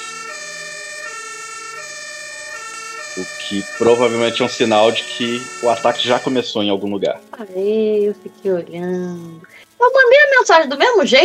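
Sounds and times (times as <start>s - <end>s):
fire truck sirens wailing: 0.0s - 6.6s
speech: 3.2s - 11.2s.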